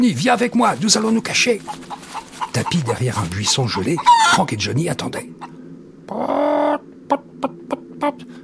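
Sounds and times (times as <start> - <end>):
speech: 0.0 - 2.0, 2.6 - 5.4, 6.2 - 6.5, 7.1 - 8.4
large hen squawking and clucking: 0.9 - 4.7, 5.3 - 7.9.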